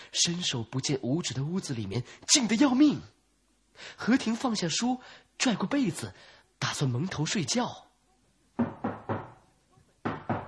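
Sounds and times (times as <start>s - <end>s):
speech: 0.1s - 3.2s, 3.8s - 7.9s
knocking on a courtyard door: 8.6s - 9.4s, 10.0s - 10.4s.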